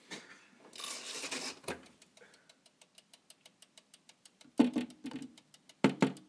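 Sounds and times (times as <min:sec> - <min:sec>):
wind-up mechanical oven timer ticking: 0:01.8 - 0:06.2.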